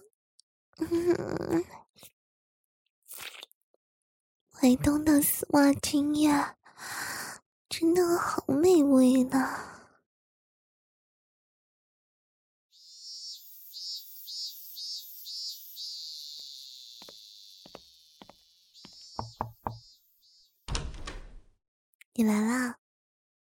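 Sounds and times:
speech: 0.9 - 2.1, 4.6 - 7.1, 7.7 - 9.8, 22.2 - 22.8
door hinge creaking as a door opens: 19.2 - 19.8, 20.7 - 21.5
door latch clicking and knocking: 20.7 - 21.5.

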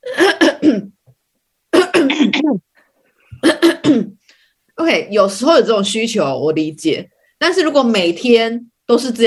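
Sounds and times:
person imitating raspy throat clearing: 0.0 - 1.0, 1.7 - 2.6, 3.3 - 4.2
speech: 2.5 - 2.7, 4.8 - 9.2.

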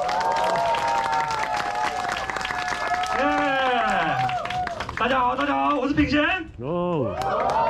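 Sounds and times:
loud whoops and high-pitched cheers: 0.0 - 4.9, 7.0 - 7.6
audience applause: 0.0 - 5.5, 7.1 - 7.6
speech: 5.0 - 7.6.

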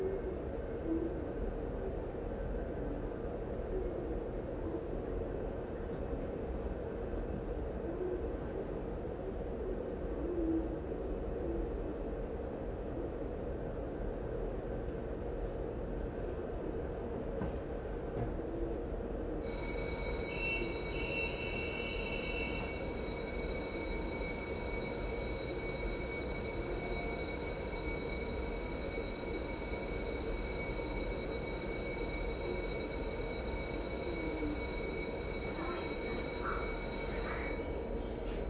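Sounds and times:
low rumble from a train at a railway station: 0.0 - 38.4
thin high steady whining tones: 19.4 - 38.4
brief bright tone: 19.5 - 27.3.

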